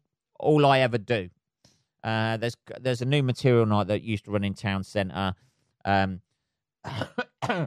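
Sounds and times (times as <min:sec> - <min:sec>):
speech: 0:00.4 - 0:01.4, 0:02.0 - 0:07.6
person coughing: 0:06.9 - 0:07.6.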